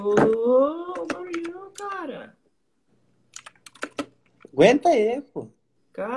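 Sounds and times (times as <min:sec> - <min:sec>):
speech: 0:00.0 - 0:01.0, 0:04.6 - 0:06.1
loud computer keyboard typing: 0:00.3 - 0:02.1, 0:03.3 - 0:04.5.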